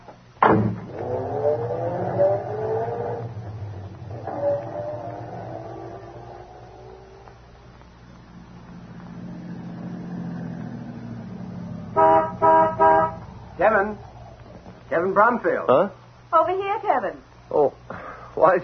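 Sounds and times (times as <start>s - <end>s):
car engine rumbling as the vehicle pulls up and slows: 0.0s - 16.4s
car horn toots and sharp honks: 11.9s - 13.3s
speech: 15.2s - 17.8s, 18.4s - 18.6s.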